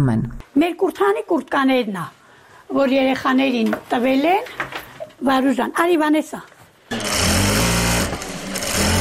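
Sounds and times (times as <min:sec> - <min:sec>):
speech: 0:00.0 - 0:07.1
sewing machine running in a small village sewing workshop: 0:06.9 - 0:08.9.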